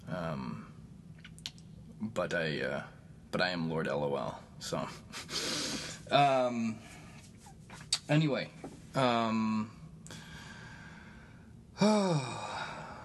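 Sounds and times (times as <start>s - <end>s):
speech: 2.0s - 7.0s, 8.1s - 9.8s, 11.8s - 12.5s
heavy breathing with voiced sighing exhales and airy inhales: 5.1s - 6.1s, 10.1s - 13.0s.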